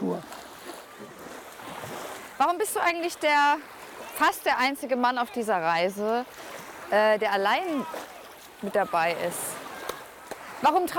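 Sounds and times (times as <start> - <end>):
sea waves washing onto the shore: 0.0 - 10.9
speech: 2.4 - 9.5, 10.6 - 10.9.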